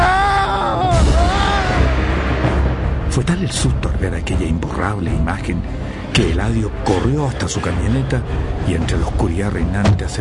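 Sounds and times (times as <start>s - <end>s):
man screaming in fright: 0.0s - 2.1s
speech: 3.2s - 10.1s.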